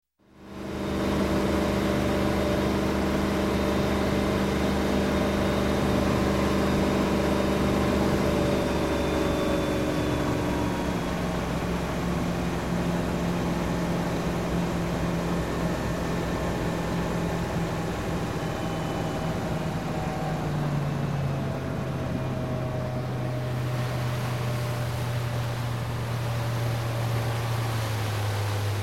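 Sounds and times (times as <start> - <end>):
inboard boat engine cruising and slowing down: 0.3 - 28.8.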